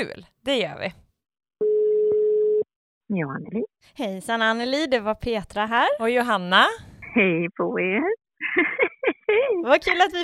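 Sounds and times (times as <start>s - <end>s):
speech: 0.0s - 1.0s, 3.1s - 10.2s
telephone ringback tone through a phone line: 1.6s - 2.6s
laughter: 8.4s - 9.6s.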